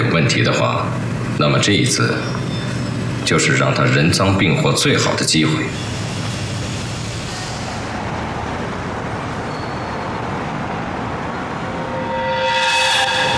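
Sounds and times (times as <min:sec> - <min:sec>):
train rumbling along rails: 0:00.0 - 0:13.3
speech: 0:00.2 - 0:02.4, 0:03.2 - 0:06.0
high metallic squeal or whistle tone: 0:02.2 - 0:03.0, 0:09.4 - 0:10.3, 0:11.3 - 0:13.3.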